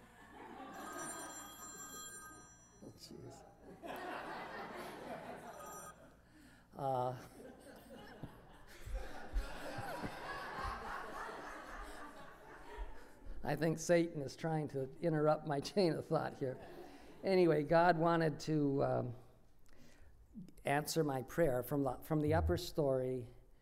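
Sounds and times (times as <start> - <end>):
telephone ringing with a bright electronic tone: 0.6 - 3.1, 5.3 - 6.0
speech: 3.0 - 4.0, 6.8 - 7.4, 13.5 - 19.2, 20.7 - 23.4
laughter: 3.7 - 5.6, 7.4 - 13.0.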